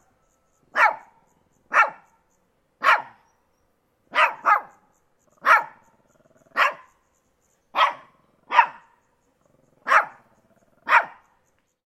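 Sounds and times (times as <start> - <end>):
Shih Tzu barking: 0.7 - 2.2, 2.8 - 3.3, 4.1 - 7.0, 7.7 - 9.0, 9.6 - 11.4.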